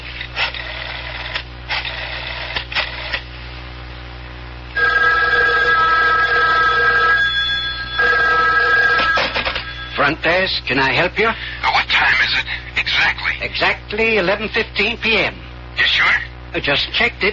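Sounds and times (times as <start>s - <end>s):
telephone bell ringing: 4.8s - 10.3s
speech: 10.1s - 17.3s.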